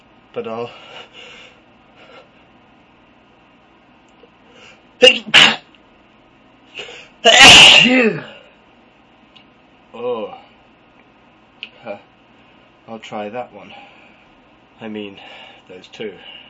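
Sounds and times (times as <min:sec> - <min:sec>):
speech: 0:00.4 - 0:01.3, 0:05.0 - 0:05.6, 0:07.2 - 0:08.3, 0:12.9 - 0:14.0, 0:14.8 - 0:16.4
person sneezing: 0:05.0 - 0:05.7, 0:06.8 - 0:08.4.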